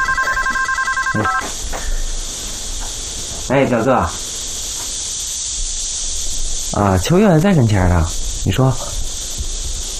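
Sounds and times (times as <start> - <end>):
telephone ringing: 0.0 - 1.5
faint hum: 0.0 - 9.9
speech: 1.1 - 1.6, 3.5 - 4.3, 6.7 - 9.0.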